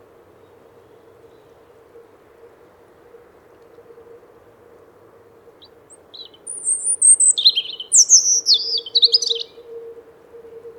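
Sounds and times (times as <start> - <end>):
European robin singing: 5.6 - 9.6.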